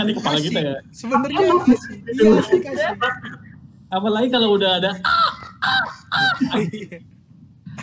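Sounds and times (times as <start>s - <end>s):
speech: 0.0s - 5.1s, 6.1s - 7.1s
laughter: 2.1s - 3.6s, 5.1s - 7.2s
voice imitating a crow cawing: 5.0s - 6.6s.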